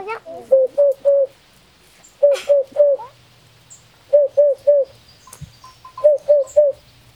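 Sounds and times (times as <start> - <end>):
Eurasian hoopoe calling oop-oop-oop: 0.0 - 1.4, 2.1 - 3.2, 4.0 - 7.0
faint noise: 0.0 - 7.1.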